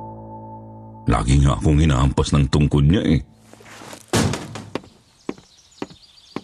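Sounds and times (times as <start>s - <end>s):
speech: 1.0s - 3.4s
heavy stomping footsteps: 3.6s - 6.4s.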